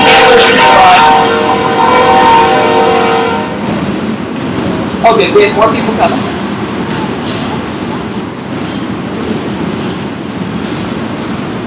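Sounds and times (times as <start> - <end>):
train rumbling past across the street: 0.0 - 11.6
train wheels clattering on rails: 3.6 - 11.6
speech: 5.1 - 6.4.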